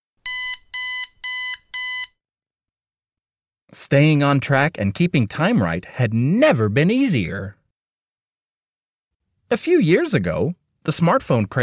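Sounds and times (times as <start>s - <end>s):
digital alarm clock beeping: 0.2s - 2.2s
speech: 3.8s - 7.6s, 9.5s - 11.6s.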